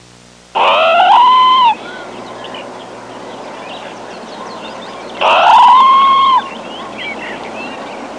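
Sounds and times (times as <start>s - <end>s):
parrot squawking: 0.6s - 2.6s, 4.4s - 7.4s.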